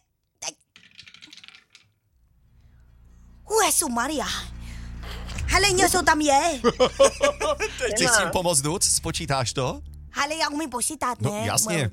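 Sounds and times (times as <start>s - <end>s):
dice tossed, rattling and tumbling: 0.8s - 2.0s
speech: 3.8s - 4.6s, 5.5s - 11.9s
laughter: 6.6s - 8.3s.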